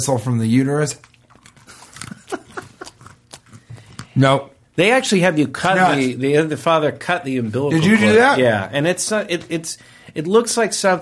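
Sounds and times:
speech: 0:00.0 - 0:01.2, 0:04.2 - 0:11.0
crunchy chewing of beer nuts: 0:00.9 - 0:04.2.

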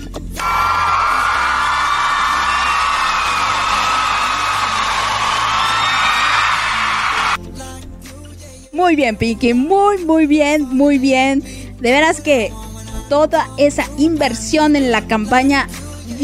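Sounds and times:
audience roaring, cheering and yelling: 0:00.4 - 0:07.4
speech: 0:08.8 - 0:16.2.

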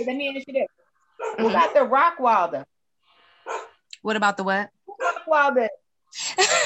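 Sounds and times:
speech: 0:00.0 - 0:02.7, 0:03.4 - 0:06.6
pit bull barking: 0:01.2 - 0:02.0, 0:03.4 - 0:03.8, 0:04.9 - 0:05.3.

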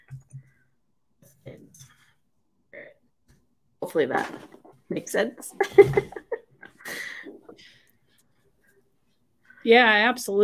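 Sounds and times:
clicks and taps: 0:00.0 - 0:00.6
speech: 0:03.9 - 0:06.2, 0:09.6 - 0:10.4.

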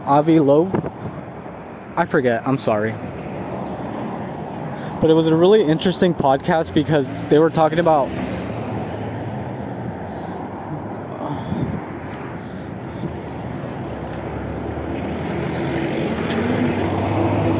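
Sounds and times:
speech: 0:00.0 - 0:01.1, 0:02.0 - 0:03.2, 0:05.0 - 0:08.3
busy street traffic: 0:00.0 - 0:17.5
cars passing: 0:00.0 - 0:17.5
heavy vehicle low drone: 0:00.0 - 0:17.5.

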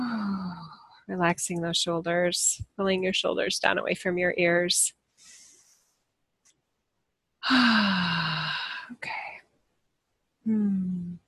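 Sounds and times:
loud long breathy sigh out through the mouth: 0:00.0 - 0:00.8, 0:07.4 - 0:08.9
speech: 0:01.1 - 0:05.0, 0:07.4 - 0:08.3, 0:10.4 - 0:11.0.

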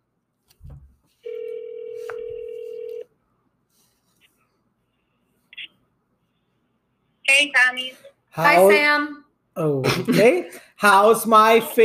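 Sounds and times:
electronic ringback tone on an outgoing phone call: 0:01.2 - 0:03.1
speech: 0:07.4 - 0:11.8.

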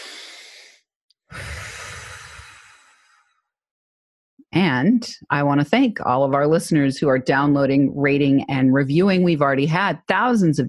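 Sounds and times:
deep cleansing breath: 0:00.0 - 0:03.5
speech: 0:04.5 - 0:10.6.

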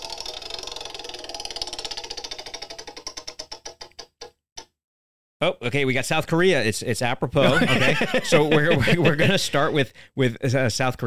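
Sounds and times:
prize wheel spinning and ticking: 0:00.0 - 0:04.2
speech: 0:05.4 - 0:11.0
laughter: 0:07.4 - 0:09.7.

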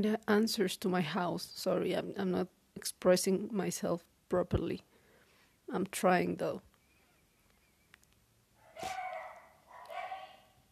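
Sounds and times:
speech: 0:00.0 - 0:04.9, 0:05.7 - 0:06.7
quiet hiss: 0:00.0 - 0:10.6
dog barking: 0:08.6 - 0:10.6.

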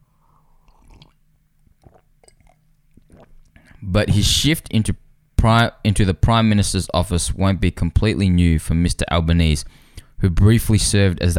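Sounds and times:
low steady hum: 0:00.0 - 0:11.3
someone sipping tea with soft slurps and wet mouth sounds: 0:00.6 - 0:03.8
swallow: 0:00.6 - 0:03.8
speech: 0:03.9 - 0:11.3.

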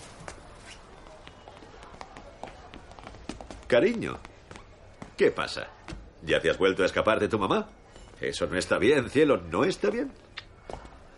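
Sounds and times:
quick light footsteps of a small child running: 0:00.0 - 0:06.1
speech: 0:03.7 - 0:04.3, 0:05.2 - 0:10.2.

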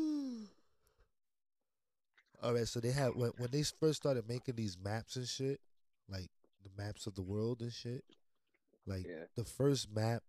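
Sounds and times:
voiced yawn: 0:00.0 - 0:00.5
speech: 0:02.4 - 0:08.2, 0:08.8 - 0:10.2.

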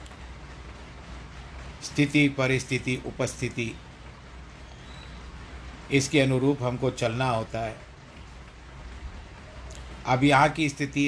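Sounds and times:
heavy rain falling outdoors: 0:00.0 - 0:11.0
speech: 0:01.8 - 0:03.9, 0:05.9 - 0:07.9, 0:10.0 - 0:11.0.

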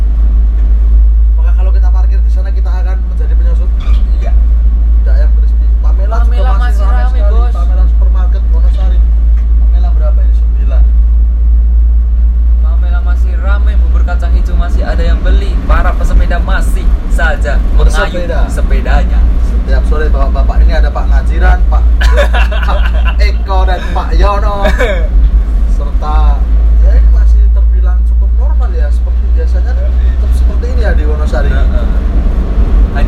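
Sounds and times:
car traffic on a street in Wonosari: 0:00.0 - 0:33.0
voices talking: 0:01.4 - 0:11.0, 0:12.7 - 0:32.1
laughter: 0:22.0 - 0:25.2.

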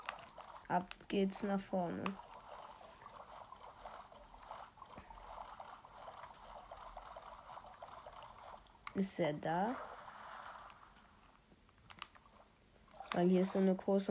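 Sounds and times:
video game boat rowing through water: 0:00.0 - 0:09.0
speech: 0:00.7 - 0:02.2, 0:09.0 - 0:09.9, 0:13.1 - 0:14.0.

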